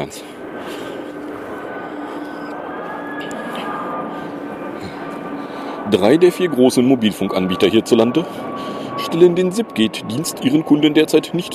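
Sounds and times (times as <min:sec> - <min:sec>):
speech: 0:00.0 - 0:00.7, 0:05.9 - 0:11.5
airplane engine roar passing overhead: 0:00.0 - 0:11.5
thin whining tones: 0:00.4 - 0:09.5.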